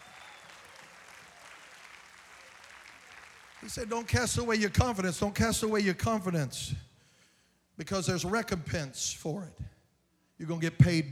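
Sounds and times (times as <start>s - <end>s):
audience clapping hands: 0.0s - 4.6s
speech: 3.6s - 6.9s, 7.8s - 9.7s, 10.4s - 11.1s.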